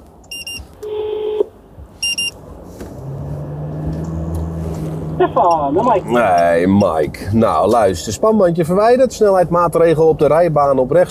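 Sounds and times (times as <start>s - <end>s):
vehicle engine and road rumble on a motorway: 0.0s - 11.0s
electronic phone tones inside a road inspector's vehicle: 0.3s - 1.4s, 2.0s - 2.4s
speech: 5.2s - 11.0s.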